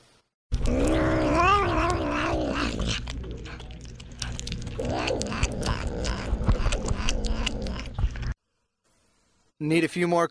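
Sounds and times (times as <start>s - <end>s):
Savannah cat growling while eating chicken leg: 0.6s - 8.4s
speech: 9.6s - 10.2s.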